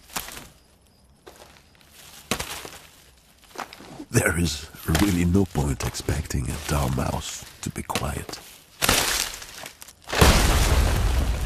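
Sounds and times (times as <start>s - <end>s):
branches snapping and cracking: 0.0s - 0.6s, 1.4s - 4.0s, 4.8s - 5.6s, 6.6s - 10.5s
speech: 4.2s - 8.5s
debris and nuts tumbling to the ground: 8.8s - 11.4s.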